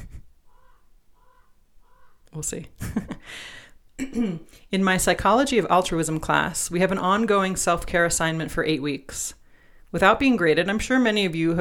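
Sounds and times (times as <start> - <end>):
raven cawing: 0.4 - 2.3
speech: 2.4 - 11.6.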